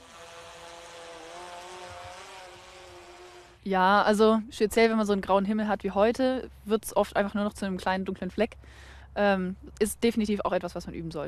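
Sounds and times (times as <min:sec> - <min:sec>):
quadcopter drone propellers buzzing in flight in difficult weather: 0:00.0 - 0:03.7
speech: 0:03.6 - 0:11.2.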